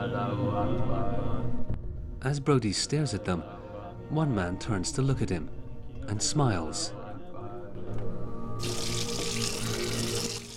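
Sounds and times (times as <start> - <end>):
speech: 0.1 - 1.6, 2.2 - 7.0
water running from a sink tap in a garage while a man washes his hands: 8.6 - 10.5.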